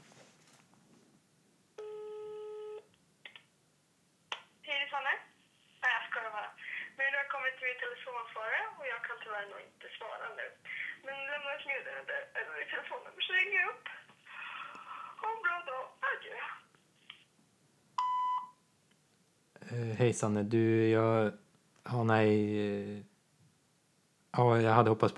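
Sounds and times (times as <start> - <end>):
phone ringback tone: 1.8 - 2.8
recorded voice speaking: 4.7 - 14.1, 19.6 - 23.1, 24.4 - 25.1
short electronic beep: 18.0 - 18.6
speech: 20.0 - 23.1, 24.4 - 25.1.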